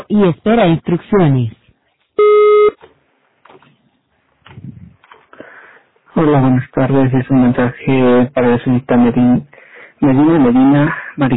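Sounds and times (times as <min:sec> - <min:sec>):
speech: 0:00.0 - 0:01.6, 0:06.2 - 0:11.3
voicemail recording beep tone: 0:02.2 - 0:02.8.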